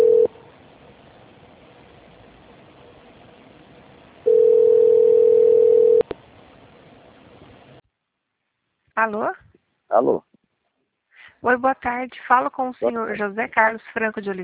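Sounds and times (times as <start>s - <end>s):
telephone tone during a call transfer over a narrow phone line: 0.0s - 0.4s, 4.2s - 6.1s
speech: 9.0s - 10.3s, 11.4s - 14.4s.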